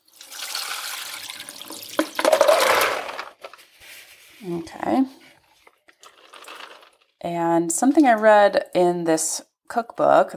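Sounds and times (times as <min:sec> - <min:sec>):
water pouring and splashing drained from soaked beans: 0:00.0 - 0:03.4
speech: 0:04.4 - 0:05.2, 0:07.2 - 0:10.3.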